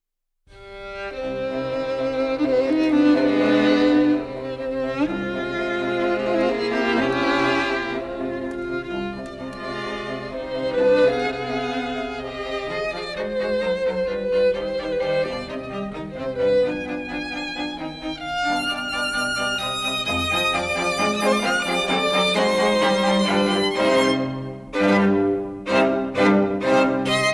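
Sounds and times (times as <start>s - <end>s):
classical string music: 0.5s - 27.3s.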